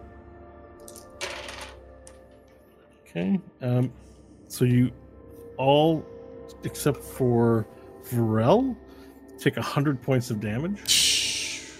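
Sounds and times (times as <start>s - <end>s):
handful of dice clattering across a hard surface: 0.8s - 2.4s
speech: 3.1s - 5.0s, 5.6s - 8.8s, 9.4s - 11.0s.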